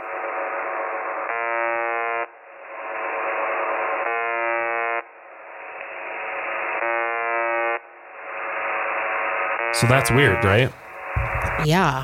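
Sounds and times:
constant loud static hiss: 0.0 - 12.0
electronic alarm buzzing on live mic: 1.2 - 2.4, 4.0 - 5.1, 6.8 - 7.9, 9.5 - 11.7
speech: 9.8 - 10.8, 11.6 - 12.0.

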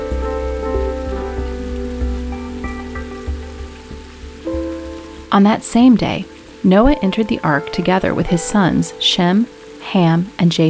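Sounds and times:
soft low thuds: 0.0 - 8.0
steady rain: 0.0 - 10.6
sustained tonal music: 0.0 - 10.6
speech: 5.3 - 10.6.

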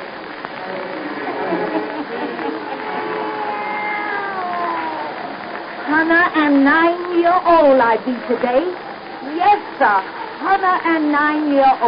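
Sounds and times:
laughter: 1.0 - 3.6
black cat meowing in wavering cries: 3.0 - 5.4
speech: 6.0 - 11.8.

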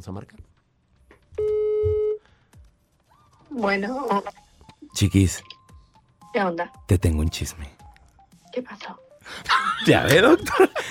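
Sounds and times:
speech: 0.0 - 0.6, 3.5 - 5.5, 6.3 - 7.8, 8.6 - 10.8
ringback tone on an outgoing telephone call: 1.4 - 2.2.

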